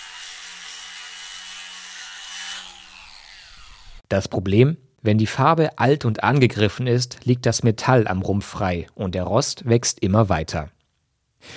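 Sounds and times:
angle grinder removing rust from a ship hull at a shipyard: 0:00.0 - 0:04.0
speech: 0:04.1 - 0:10.8.

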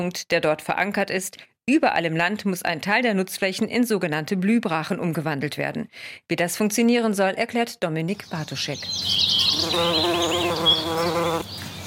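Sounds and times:
speech: 0:00.0 - 0:11.6
faint high chirps: 0:08.3 - 0:11.8
insects such as bees buzzing: 0:09.0 - 0:11.8.

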